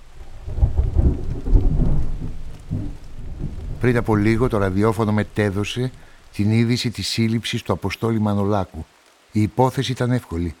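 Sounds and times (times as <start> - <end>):
deep rolling thunder: 0.0 - 6.3
steady rain: 0.0 - 10.5
speech: 3.8 - 10.5.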